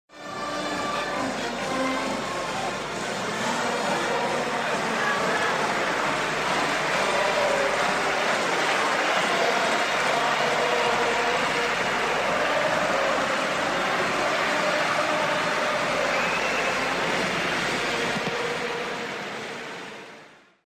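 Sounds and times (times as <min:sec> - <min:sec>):
crowd singing: 0:00.2 - 0:20.4.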